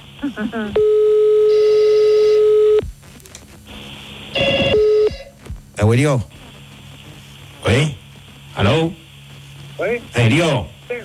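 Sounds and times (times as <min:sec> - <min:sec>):
speech: 0:00.2 - 0:01.2, 0:05.8 - 0:06.4, 0:08.6 - 0:09.0, 0:09.9 - 0:11.0
electronic telephone hold tone: 0:00.8 - 0:02.9, 0:04.3 - 0:05.4.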